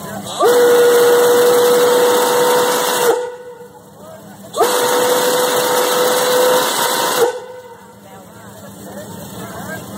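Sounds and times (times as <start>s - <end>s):
locomotive work whistle: 0.0s - 8.0s.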